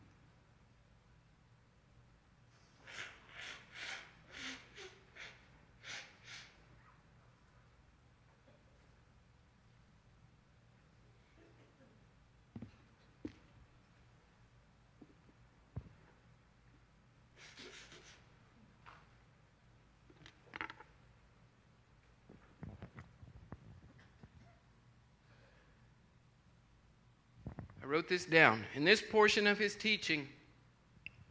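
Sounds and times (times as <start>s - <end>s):
person blowing nose: 2.8s - 6.6s, 17.3s - 18.3s
sniffing: 17.4s - 18.3s
speech: 27.9s - 30.4s.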